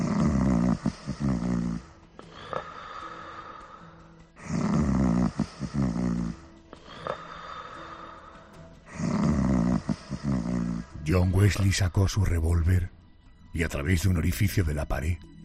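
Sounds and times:
man snoring loudly: 0.0 - 3.2, 4.4 - 7.9, 8.9 - 11.1
speech: 11.1 - 15.3.

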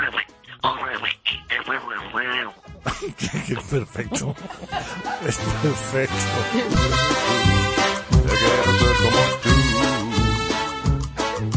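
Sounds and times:
person doing a raspy nasal cartoon-duck voice with quacking speech: 0.0 - 2.6, 8.3 - 10.8
speech: 0.6 - 9.5
laughter: 2.8 - 7.6.

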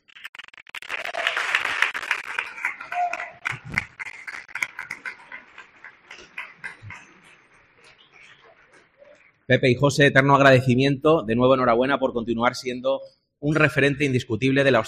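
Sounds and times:
crowd applauding: 0.0 - 9.5
speech: 9.5 - 14.8.

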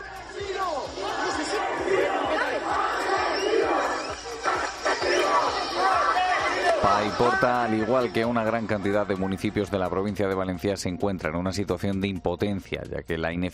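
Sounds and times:
large angry crowd booing and shouting: 0.0 - 10.1
speech: 7.0 - 13.5.

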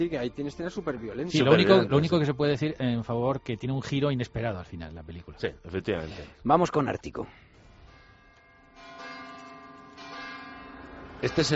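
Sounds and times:
speech: 0.0 - 7.5, 11.2 - 11.5
church bells ringing: 7.8 - 11.5.

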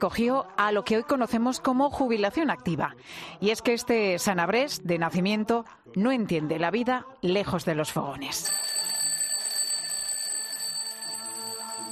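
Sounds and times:
speech: 0.0 - 8.6
alarm clock ringing with a shrill electronic tone: 8.4 - 11.9.

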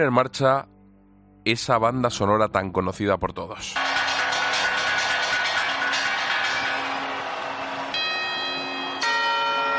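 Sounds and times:
speech: 0.0 - 0.7, 1.4 - 3.9
clock-tower bells chiming the quarters in a New Year's Eve rehearsal: 3.8 - 9.7.

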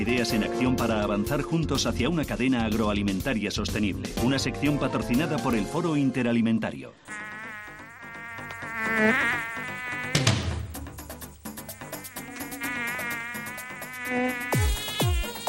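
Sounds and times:
speech: 0.0 - 7.3, 9.0 - 9.4
fly buzzing: 7.1 - 15.4.

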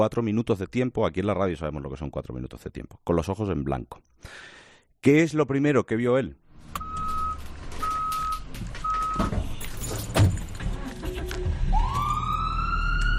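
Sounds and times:
speech: 0.0 - 6.9
traffic rumbling: 6.5 - 13.1
ambulance siren winding up: 11.0 - 13.1.

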